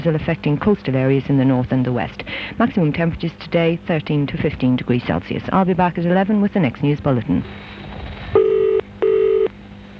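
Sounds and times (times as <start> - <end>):
speech: 0.0 - 7.7
low hum: 0.0 - 9.9
telephone dialing tones in a radio advert: 8.4 - 9.5.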